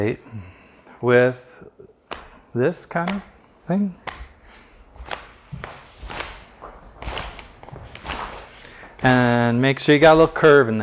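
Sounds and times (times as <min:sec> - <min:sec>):
speech: 0:00.0 - 0:01.4, 0:02.6 - 0:04.1, 0:09.0 - 0:10.8
hands slapping and brushing against a thigh: 0:02.1 - 0:02.4, 0:03.0 - 0:03.4, 0:04.0 - 0:09.2.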